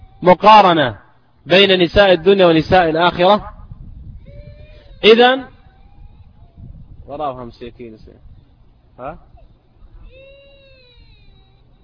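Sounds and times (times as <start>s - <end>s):
young child crying in a drawn-out wail: 0.0s - 0.4s, 4.2s - 6.8s, 9.4s - 11.8s
hum: 0.0s - 11.8s
speech: 0.2s - 3.5s, 5.0s - 5.5s, 7.1s - 8.3s, 9.0s - 9.3s.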